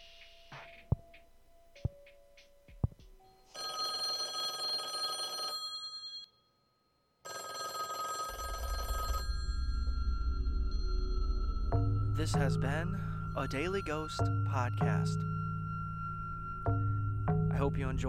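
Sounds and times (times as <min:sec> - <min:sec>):
telephone bell ringing: 0:03.3 - 0:06.5, 0:07.2 - 0:10.2
low rumble: 0:09.2 - 0:18.0
speech: 0:12.3 - 0:15.3, 0:17.6 - 0:18.0.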